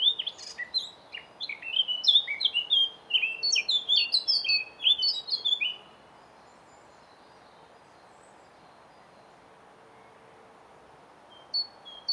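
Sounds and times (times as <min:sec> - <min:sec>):
Eurasian blackcap song, Sylvia atricapilla: 0:00.0 - 0:05.9.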